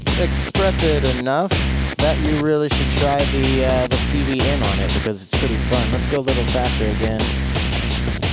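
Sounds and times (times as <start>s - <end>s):
gritty synth tone through four-band distortion module: 0.2s - 1.2s, 2.0s - 7.2s
speech: 0.2s - 8.2s.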